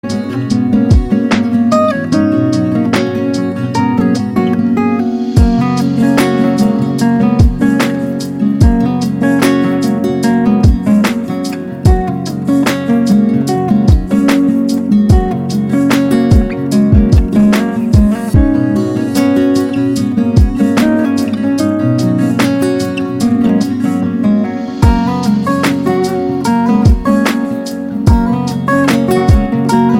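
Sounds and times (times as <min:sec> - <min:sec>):
lofi remix: 0:00.0 - 0:29.9.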